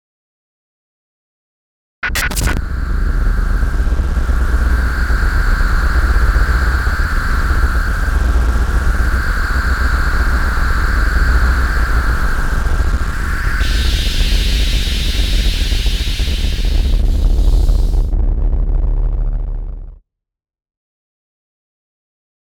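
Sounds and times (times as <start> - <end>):
electrical surge glitch: 2.0 - 19.9.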